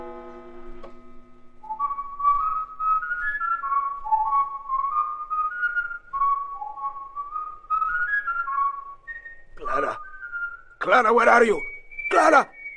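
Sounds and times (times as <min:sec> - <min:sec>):
person whistling a lilting melody downstairs: 0:01.7 - 0:12.7
speech: 0:10.9 - 0:12.5.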